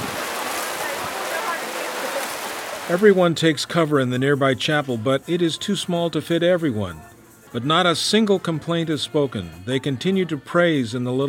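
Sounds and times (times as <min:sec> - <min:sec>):
heavy rain pouring down on a church gathering under a tent: 0:00.0 - 0:03.1
speech: 0:02.9 - 0:11.2.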